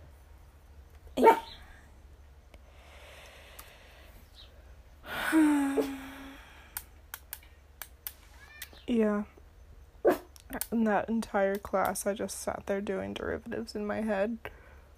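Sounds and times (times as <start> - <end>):
puppy barking: 1.2 - 1.6, 10.0 - 10.3
speech: 5.8 - 6.0, 9.0 - 9.3, 10.7 - 14.6.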